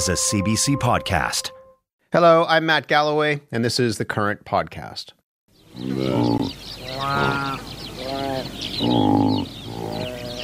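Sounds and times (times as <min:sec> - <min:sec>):
speech: 0:00.0 - 0:05.2, 0:05.8 - 0:07.7, 0:08.4 - 0:09.6
saiga antelope nasal bleats: 0:05.8 - 0:10.4.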